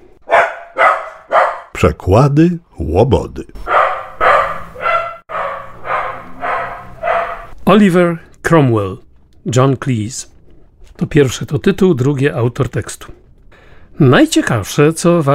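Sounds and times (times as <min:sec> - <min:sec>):
dog barking: 0:00.2 - 0:01.8, 0:03.6 - 0:07.5
speech: 0:01.8 - 0:03.7, 0:07.7 - 0:10.4, 0:11.0 - 0:13.2, 0:14.0 - 0:15.3.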